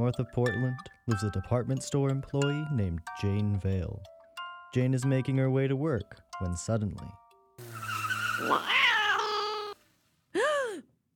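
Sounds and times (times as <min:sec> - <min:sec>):
speech: 0:00.0 - 0:04.1, 0:04.7 - 0:07.2, 0:08.4 - 0:08.9
cat meowing: 0:08.4 - 0:09.8.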